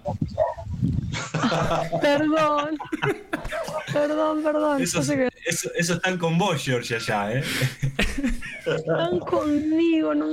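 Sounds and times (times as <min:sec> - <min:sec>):
dogs barking and yelping: 0:00.0 - 0:00.8
laughter: 0:01.1 - 0:04.8, 0:07.3 - 0:10.0
speech: 0:01.5 - 0:10.3.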